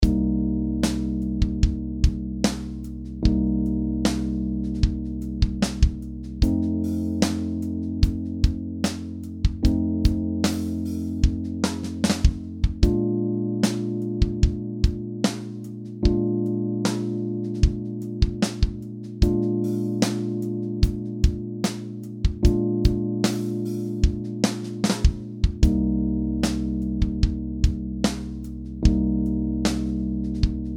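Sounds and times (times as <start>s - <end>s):
ii V I backing track chord progression in B flat major: 0.0s - 30.7s.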